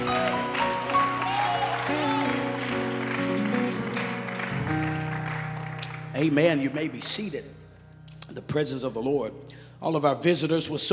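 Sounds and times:
congregation clapping hands: 0.0 - 7.3
sustained organ or keyboard chords: 0.0 - 10.9
speech: 6.2 - 7.6, 8.4 - 10.9.

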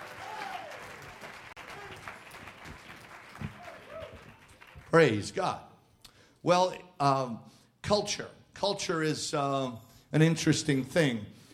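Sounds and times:
audience applause: 0.0 - 5.0
speech: 4.9 - 5.7, 6.4 - 11.4.

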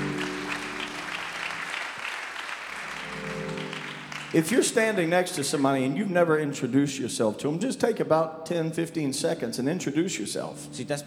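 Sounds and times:
church congregation clapping to welcome guests: 0.0 - 5.8
speech: 4.3 - 11.0.

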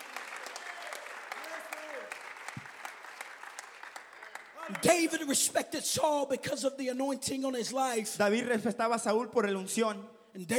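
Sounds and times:
congregation clapping hands: 0.0 - 5.4
speech: 4.7 - 10.5.

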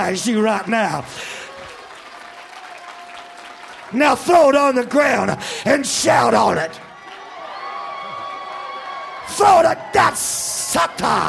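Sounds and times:
speech: 0.0 - 1.4, 3.9 - 6.8, 9.3 - 11.2
crowd of people clapping their hands: 0.0 - 5.6, 6.4 - 9.8.

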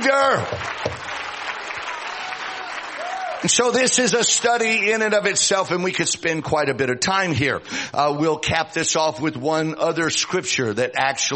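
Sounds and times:
speech: 0.0 - 0.9, 3.4 - 11.3
congregation clapping hands in praise during a worship service: 0.0 - 4.2.

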